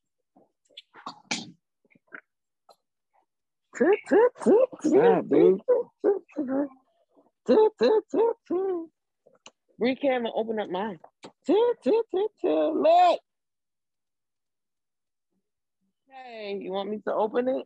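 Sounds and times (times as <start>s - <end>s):
speech: 3.8s - 6.8s, 7.5s - 9.0s, 9.8s - 13.2s, 16.2s - 17.6s
dog barking in high-pitched yappy bursts: 5.6s - 6.3s.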